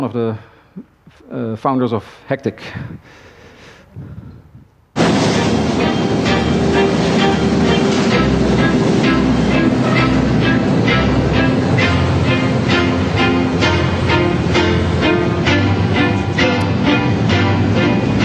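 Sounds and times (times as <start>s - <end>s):
speech: 0.0s - 3.3s, 3.9s - 4.3s
metro train roaring through a metro station in Amsterdam: 5.0s - 18.2s.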